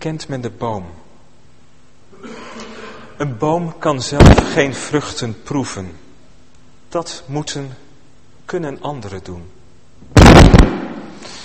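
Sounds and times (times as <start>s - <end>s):
speech: 0.0s - 1.0s, 3.2s - 6.0s, 6.9s - 7.8s, 8.5s - 10.3s
firework bang outside: 4.2s - 4.6s, 10.2s - 11.2s
rumbling echo of fireworks: 4.2s - 4.9s, 10.2s - 11.2s.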